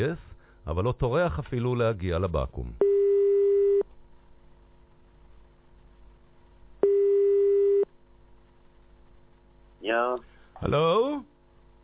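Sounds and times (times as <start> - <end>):
speech: 0.0 - 2.9, 9.9 - 11.3
telephone ringing with long electronic tones: 2.8 - 3.8, 6.8 - 7.9.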